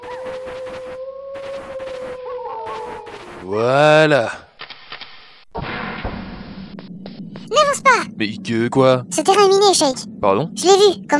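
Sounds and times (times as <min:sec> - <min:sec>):
wolf howling: 0:00.0 - 0:04.0
speech: 0:03.4 - 0:04.4, 0:07.9 - 0:11.1.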